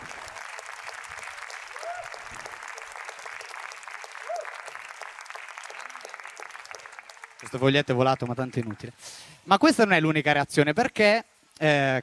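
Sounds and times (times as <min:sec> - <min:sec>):
audience applause: 0:00.0 - 0:09.0
speech: 0:07.4 - 0:12.0.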